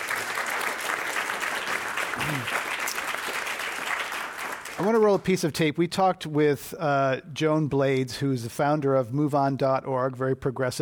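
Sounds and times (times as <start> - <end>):
audience applause: 0.0 - 5.3
speech: 2.2 - 2.7, 4.8 - 10.8.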